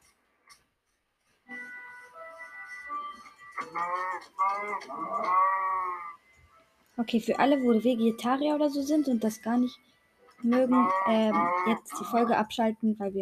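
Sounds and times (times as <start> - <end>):
video game cow mooing: 3.6 - 6.2, 10.5 - 12.3
speech: 3.7 - 5.6, 7.0 - 13.1.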